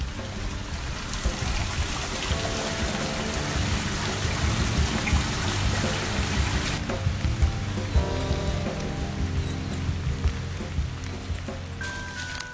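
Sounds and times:
steady heavy rain: 0:00.0 - 0:12.5.

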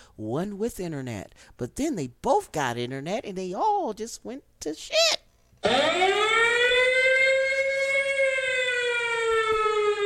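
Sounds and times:
speech: 0:00.2 - 0:06.2
alarm siren wailing: 0:05.6 - 0:10.0.

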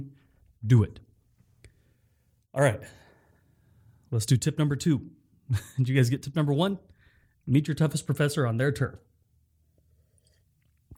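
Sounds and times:
speech: 0:00.6 - 0:01.0, 0:02.6 - 0:03.0, 0:04.1 - 0:06.9, 0:07.5 - 0:09.1
sipping coffee: 0:09.9 - 0:10.9
wet mouth sound: 0:10.1 - 0:10.9.

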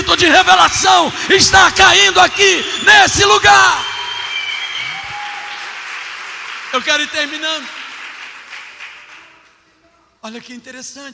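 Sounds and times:
speech: 0:00.2 - 0:03.9, 0:06.7 - 0:07.8, 0:10.2 - 0:11.1
crowd applauding: 0:01.3 - 0:09.6
whistles: 0:01.9 - 0:05.8.

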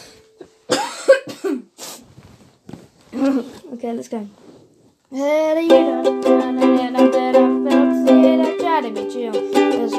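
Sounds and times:
person coughing: 0:00.4 - 0:01.8
speech: 0:03.2 - 0:04.4, 0:05.1 - 0:09.9.

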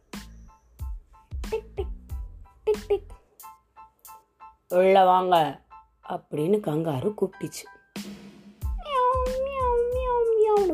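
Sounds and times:
speech: 0:04.7 - 0:07.8
cat meowing: 0:08.6 - 0:10.7.

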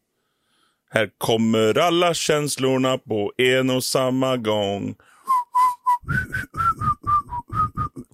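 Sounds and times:
speech: 0:00.9 - 0:05.1
person whistling a short tune: 0:05.2 - 0:08.1.

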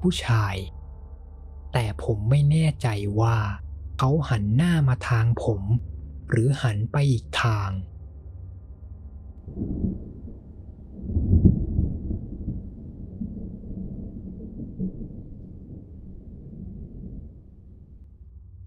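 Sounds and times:
speech: 0:00.0 - 0:00.8, 0:01.7 - 0:07.9, 0:09.5 - 0:10.1
rolling thunder from a lightning strike: 0:09.4 - 0:18.1.

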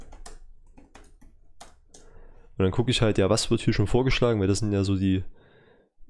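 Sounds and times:
typing a search term on a computer keyboard: 0:00.0 - 0:02.1
speech: 0:02.6 - 0:05.4.

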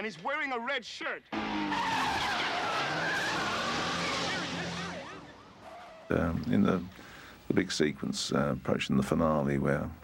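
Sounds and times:
speech: 0:00.0 - 0:02.3, 0:06.1 - 0:10.0
stolen car tires squealing and skidding: 0:01.3 - 0:06.5
stolen car engine roaring at speed: 0:01.3 - 0:07.3.

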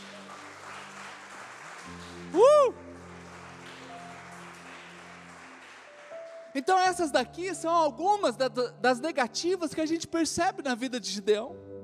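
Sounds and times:
low sustained musical drone: 0:00.0 - 0:06.9
crowd applauding: 0:00.0 - 0:07.0
speech: 0:01.9 - 0:02.8, 0:06.6 - 0:11.6.

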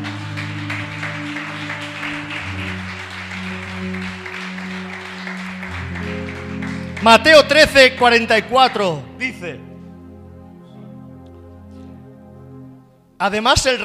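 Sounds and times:
large crowd applauding: 0:00.0 - 0:09.2
sustained keyboard chords: 0:00.0 - 0:13.8
speech: 0:07.0 - 0:09.7, 0:13.2 - 0:13.8.

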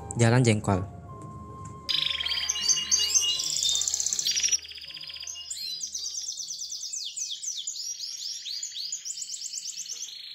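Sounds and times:
speech: 0:00.2 - 0:01.0
pet songbird chirping and trilling after bath: 0:01.9 - 0:10.3.

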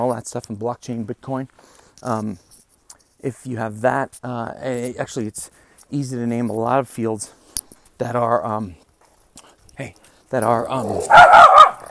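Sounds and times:
speech: 0:00.0 - 0:02.6, 0:03.2 - 0:07.4, 0:08.0 - 0:08.8, 0:09.8 - 0:11.5
dog whining and barking indoors: 0:11.0 - 0:11.8.

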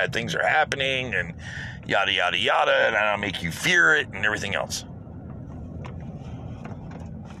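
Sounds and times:
speech: 0:00.0 - 0:04.9
heavy drill truck engine rumbling: 0:00.0 - 0:07.3.

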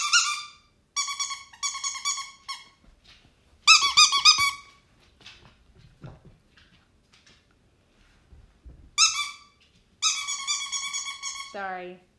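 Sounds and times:
dog toy squeaker squeaking: 0:00.0 - 0:02.7, 0:03.7 - 0:04.7, 0:09.0 - 0:11.6
faint rustling: 0:04.6 - 0:10.0
speech: 0:11.6 - 0:12.1.

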